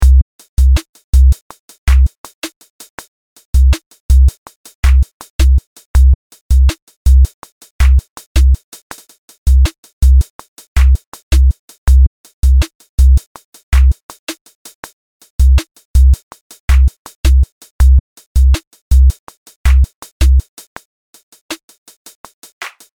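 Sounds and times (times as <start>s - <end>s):
music loop with beats: 0.0s - 2.1s, 3.6s - 8.6s, 9.5s - 14.0s, 15.4s - 20.4s.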